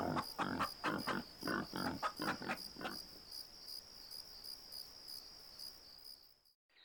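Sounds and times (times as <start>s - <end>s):
pigs grunting while strolling around a yard: 0.0s - 3.0s
steady high cricket trill: 0.0s - 6.6s.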